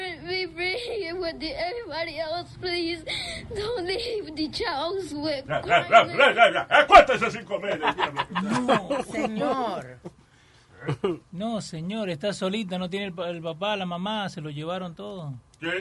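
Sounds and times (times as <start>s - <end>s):
young girl crying and whimpering: 0.0s - 6.3s
speech: 1.3s - 10.1s, 10.8s - 15.7s
laughter: 5.5s - 9.8s.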